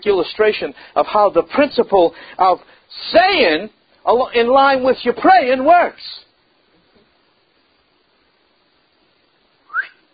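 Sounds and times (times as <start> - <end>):
speech: 0.0 - 6.2
breathy whistle attempt with a dry mouth: 9.6 - 10.1.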